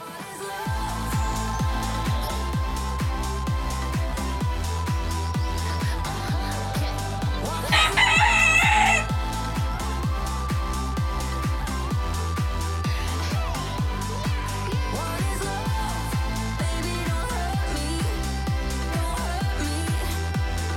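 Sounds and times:
steady loud thumping beat: 0.7s - 20.7s
chicken clucking and crowing: 7.6s - 9.1s.

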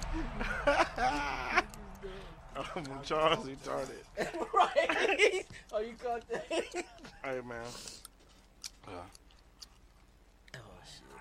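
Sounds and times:
laughter: 0.0s - 7.4s
speech: 2.6s - 8.0s, 8.9s - 9.2s
loud gum chewing near microphone: 7.9s - 10.6s.

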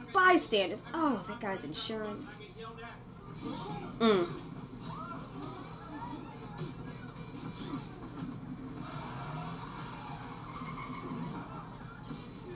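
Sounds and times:
speech: 0.3s - 4.6s
car tires squealing while drifting: 8.8s - 11.6s.

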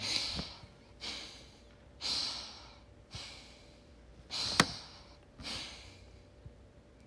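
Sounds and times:
heavy angry breathing through flaring nostrils: 0.0s - 6.3s.

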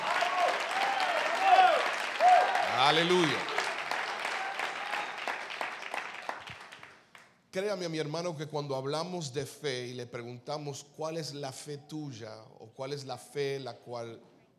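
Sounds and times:
people shouting and cheering: 0.0s - 5.4s
audience applause: 0.0s - 7.2s
speech: 2.8s - 3.5s, 7.6s - 14.5s.

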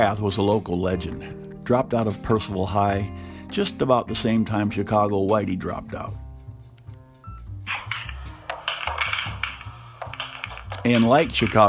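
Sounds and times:
speech: 0.0s - 6.2s, 10.8s - 11.6s
pool balls clicking and knocking together: 7.7s - 11.6s.

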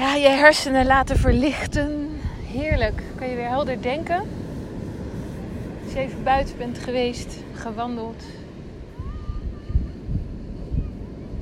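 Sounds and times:
gusty wind buffeting the microphone: 0.0s - 11.4s
sea surf washing against the shore: 0.0s - 11.4s
speech: 0.2s - 4.4s, 5.9s - 8.4s
faint thin whistling tones: 8.9s - 11.4s.

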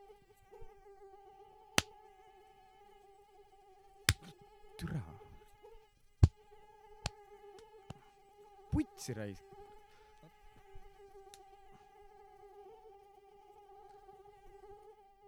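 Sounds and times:
mosquito whining inside a room on Vormsi: 0.0s - 15.2s
sharp taps: 4.1s - 4.3s
person muttering: 4.2s - 5.3s, 8.8s - 9.4s
speech: 4.8s - 5.2s, 9.0s - 9.6s.

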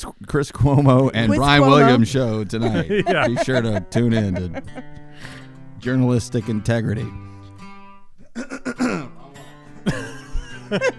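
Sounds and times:
speech: 0.0s - 7.3s, 8.4s - 8.6s, 10.7s - 10.9s
laughter: 1.3s - 5.4s, 9.8s - 10.9s
gravelly voiced coughing: 2.6s - 5.3s, 8.2s - 10.6s
throat clearing: 8.2s - 9.2s.

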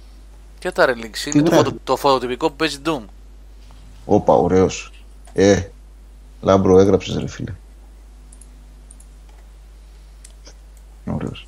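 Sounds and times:
steady low hum: 0.0s - 11.4s
speech: 0.6s - 3.2s, 4.0s - 5.7s, 6.4s - 7.6s
computer mouse clicking: 8.3s - 9.5s, 10.2s - 11.4s.

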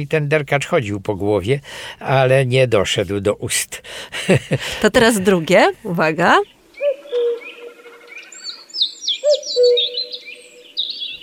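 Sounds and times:
speech: 0.0s - 6.6s
other small birds chirping and singing: 5.1s - 11.2s
common cuckoo calling: 6.7s - 11.2s.

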